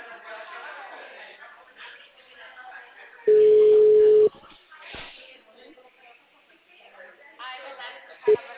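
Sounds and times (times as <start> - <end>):
ringback tone on an outgoing phone call: 3.3 - 4.3
short beep: 3.3 - 4.3.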